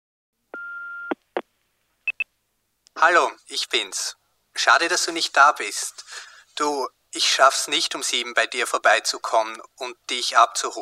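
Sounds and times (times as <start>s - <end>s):
answering machine beep before a message: 0.6s - 1.2s
speech: 3.0s - 10.8s.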